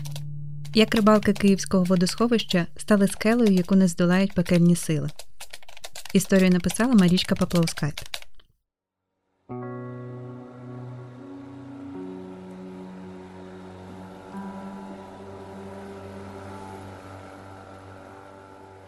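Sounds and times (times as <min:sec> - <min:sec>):
speech: 0:00.7 - 0:05.2, 0:06.1 - 0:08.1
motorboat engines droning on water: 0:09.6 - 0:18.8.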